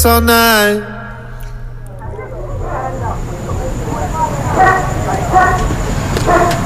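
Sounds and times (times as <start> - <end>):
speech: 0.0 - 1.0
low rumbling noise: 0.0 - 6.6
dog barking: 2.1 - 6.6.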